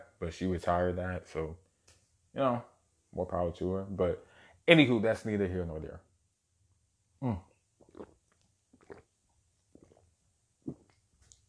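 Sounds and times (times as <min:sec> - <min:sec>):
speech: 0:00.2 - 0:01.6, 0:02.3 - 0:06.1, 0:07.2 - 0:08.1
person sipping water: 0:07.2 - 0:11.4
short wet slurps and swallows: 0:07.8 - 0:11.4.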